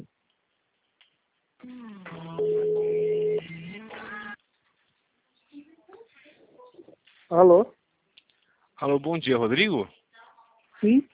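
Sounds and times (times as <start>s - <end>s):
speech: 1.6s - 2.2s, 7.3s - 7.8s, 8.8s - 10.0s, 10.8s - 11.1s
electronic mobile phone ringtone: 2.4s - 3.6s.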